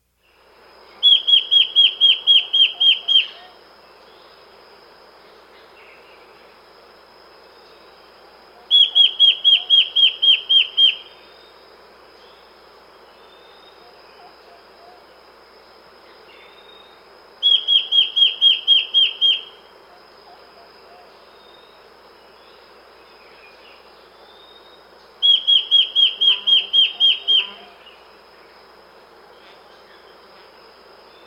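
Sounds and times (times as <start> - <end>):
Immaculate Antbird calling: 1.0 - 3.5, 8.6 - 11.1, 17.4 - 19.5, 25.2 - 28.0.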